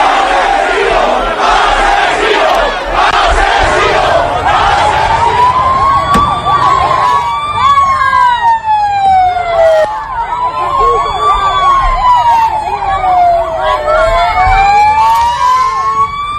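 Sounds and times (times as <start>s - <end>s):
angry crowd in Paiporta shouting and jeering: 0.0s - 16.3s
wailing siren: 0.1s - 16.3s
stick striking the prime minister's car: 6.1s - 6.4s.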